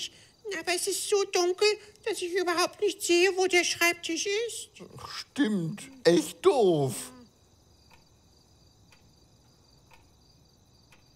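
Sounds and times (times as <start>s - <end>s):
speech: 0.0s - 7.2s
faint hum: 0.0s - 11.1s
alarm clock ticking: 5.7s - 7.2s.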